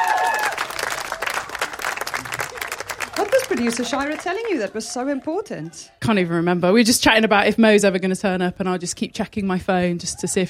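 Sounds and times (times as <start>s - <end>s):
audience applause at a live event: 0.0s - 5.4s
speech: 3.5s - 10.4s.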